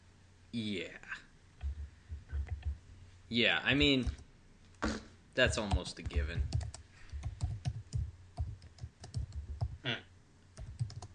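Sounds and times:
speech: 0:00.5 - 0:01.2, 0:03.3 - 0:04.2, 0:05.4 - 0:06.6
loud two-finger typing on a computer keyboard: 0:05.6 - 0:09.8, 0:10.6 - 0:11.1.

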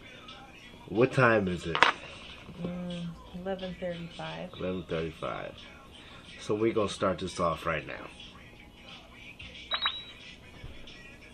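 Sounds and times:
speech: 0:00.9 - 0:02.0, 0:02.6 - 0:02.8, 0:03.4 - 0:05.8, 0:06.4 - 0:08.3
phone notification electronic chirps: 0:09.7 - 0:10.2.

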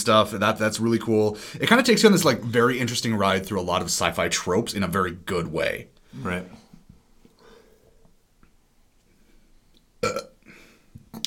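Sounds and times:
speech: 0:00.0 - 0:06.6
faint noise: 0:00.0 - 0:11.2
burp: 0:10.0 - 0:10.6.

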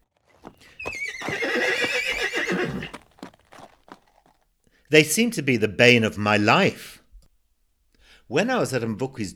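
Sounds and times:
horse snorting softly: 0:00.0 - 0:04.4
horse whinnying: 0:00.4 - 0:03.3
speech: 0:04.9 - 0:07.0, 0:08.3 - 0:09.3.

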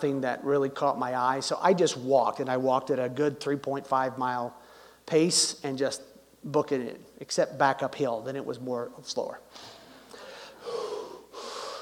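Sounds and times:
speech: 0:00.0 - 0:09.8
heavy deep breathing of a person hiking uphill on a trail: 0:09.5 - 0:11.7.

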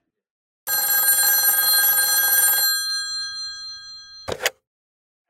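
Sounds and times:
telephone bell ringing: 0:00.7 - 0:04.5
person speaking: 0:04.3 - 0:04.5.

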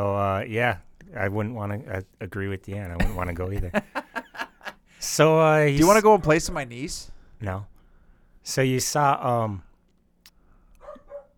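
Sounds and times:
speech: 0:00.0 - 0:04.0, 0:05.0 - 0:07.7, 0:08.4 - 0:09.7
laughter: 0:03.0 - 0:04.8
dog barking: 0:10.8 - 0:11.3.

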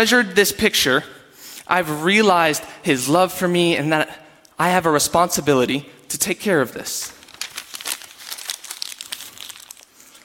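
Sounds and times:
speech: 0:00.0 - 0:07.2
sheet of paper being crumpled: 0:07.1 - 0:10.2.

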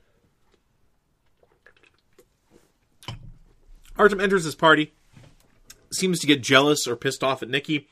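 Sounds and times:
person sipping and swallowing a drink: 0:00.4 - 0:03.2
speech: 0:04.0 - 0:05.0, 0:05.9 - 0:07.9.

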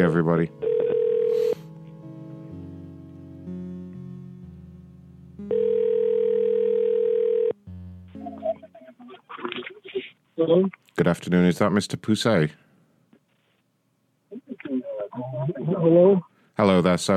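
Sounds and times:
speech: 0:00.0 - 0:00.7, 0:10.5 - 0:12.6, 0:15.9 - 0:17.1
telephone dial tone: 0:00.6 - 0:01.6, 0:05.5 - 0:07.6.

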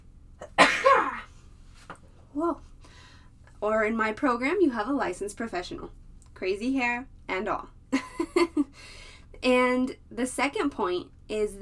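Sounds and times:
single sharp sneeze: 0:00.5 - 0:01.3
speech: 0:02.4 - 0:02.7, 0:03.6 - 0:11.6.

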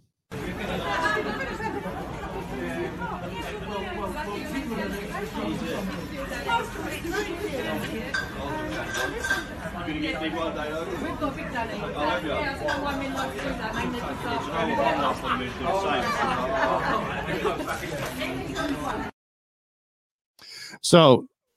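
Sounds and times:
crowd chatter in a shopping center: 0:00.3 - 0:19.1
speech: 0:04.0 - 0:19.1, 0:20.8 - 0:21.3.

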